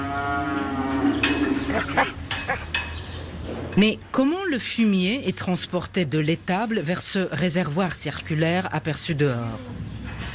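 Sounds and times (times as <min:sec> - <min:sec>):
cow mooing in a farm barn: 0:00.0 - 0:02.1
speech: 0:03.8 - 0:09.8.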